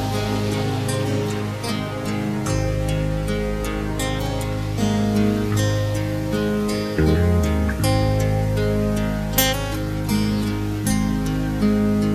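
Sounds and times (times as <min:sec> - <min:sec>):
backing track without backing vocals: 0:00.2 - 0:12.0.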